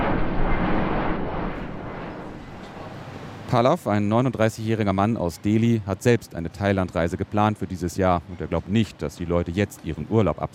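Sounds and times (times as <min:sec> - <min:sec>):
airplanes flying overhead: 0:00.0 - 0:04.1
speech: 0:03.5 - 0:10.5.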